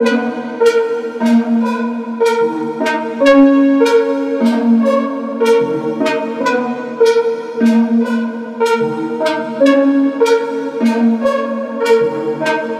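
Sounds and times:
synth loop in D-sharp minor: 0.0 - 12.7.

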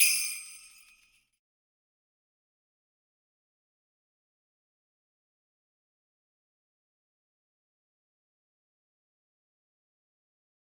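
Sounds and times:
sleigh bells one shots: 0.0 - 1.3.

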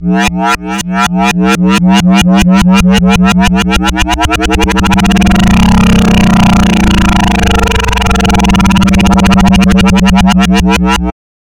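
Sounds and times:
bass note in F: 0.0 - 11.1.

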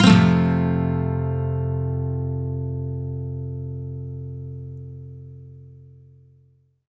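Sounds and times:
electric and acoustic guitar major sweep loop in F: 0.0 - 4.3.

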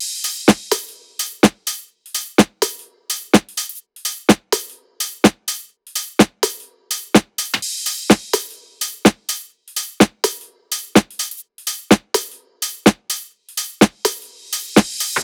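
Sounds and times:
top loop at 126: 0.0 - 15.2.

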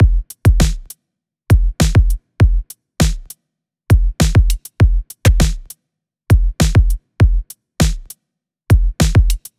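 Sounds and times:
EDM drum loop at 100 BPM: 0.0 - 0.9, 1.5 - 3.3, 3.9 - 5.7, 6.3 - 8.1, 8.7 - 9.5.

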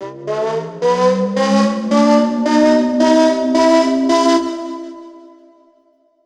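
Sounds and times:
alarm siren with reverb processing: 0.0 - 5.8.

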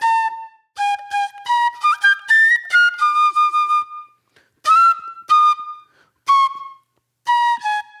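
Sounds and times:
shrill flute: 0.0 - 7.9.

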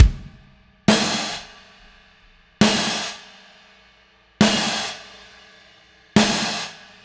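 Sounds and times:
drums in indie rock anthems: 0.0 - 7.0.

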